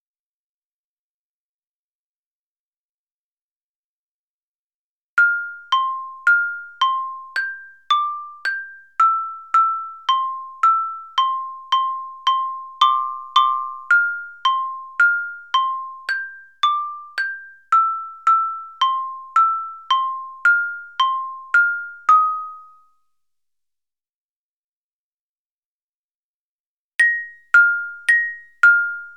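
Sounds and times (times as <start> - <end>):
triumphant xylophone melody: 5.2 - 22.7, 27.0 - 29.1.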